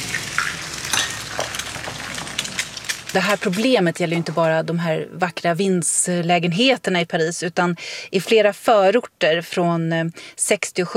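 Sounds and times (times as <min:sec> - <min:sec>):
eggs sizzling in a hot pan with spattering fat: 0:00.0 - 0:05.1
speech: 0:03.1 - 0:10.9.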